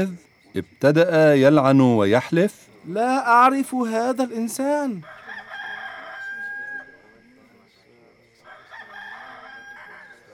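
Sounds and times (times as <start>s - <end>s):
speech: 0.0s - 5.2s
rooster crowing: 5.0s - 7.2s, 8.4s - 10.3s.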